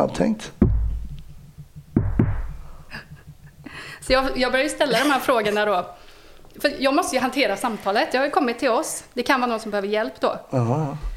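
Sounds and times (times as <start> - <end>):
speech: 0.0 - 0.6, 4.0 - 6.0, 6.6 - 11.1
low rumble: 0.5 - 7.7
knocks on a hard surface: 0.6 - 4.5.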